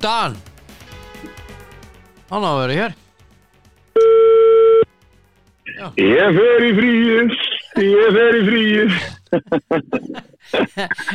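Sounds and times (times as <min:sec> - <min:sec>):
speech: 0:00.0 - 0:00.5, 0:02.3 - 0:03.0, 0:05.8 - 0:11.1
telephone call tone: 0:04.0 - 0:04.9
laughter: 0:06.0 - 0:11.1.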